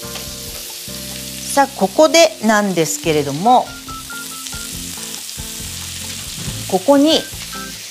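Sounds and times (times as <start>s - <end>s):
maitake mushrooms sizzling in a well-heated frying pan: 0.0s - 7.9s
speech: 1.6s - 3.8s, 6.7s - 7.4s.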